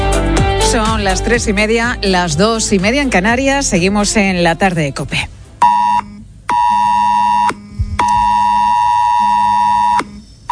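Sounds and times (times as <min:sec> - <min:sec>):
speech: 0:00.7 - 0:05.4
mobile phone emergency alert tone: 0:05.6 - 0:10.5.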